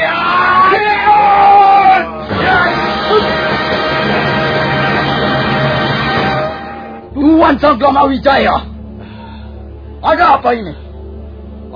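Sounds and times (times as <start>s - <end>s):
warriors shouting battle yells as they leap to ambush: 0.0s - 4.8s
chaotic crowd commotion of overlapping cries: 0.0s - 7.1s
speech: 7.6s - 8.7s, 10.0s - 10.8s.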